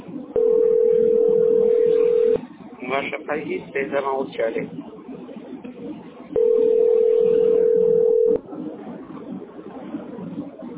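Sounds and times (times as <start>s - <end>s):
faint low noise: 0.0s - 10.7s
telephone dial tone while a call is placed: 0.4s - 2.4s, 6.4s - 8.4s
speech: 2.9s - 5.0s.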